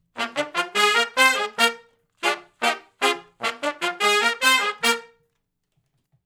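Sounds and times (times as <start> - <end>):
R and B horn section riff in B flat, unison to harmony: 0.0 - 5.2.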